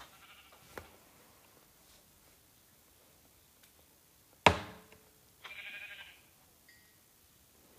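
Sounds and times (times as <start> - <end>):
sheep bleating while being killed: 0.1 - 0.6, 5.4 - 6.3
sharp hitting thud: 4.5 - 4.9.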